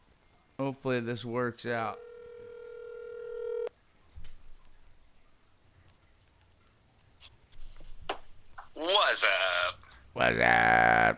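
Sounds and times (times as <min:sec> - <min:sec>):
speech: 0:00.6 - 0:02.1, 0:10.2 - 0:11.1
single steady electronic phone tone: 0:02.0 - 0:03.7.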